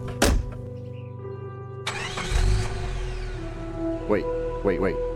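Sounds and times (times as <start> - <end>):
sharp thunk: 0.2 - 0.6
truck engine cranking, catching and driving away over a hill: 1.8 - 4.6
speech: 4.1 - 5.1.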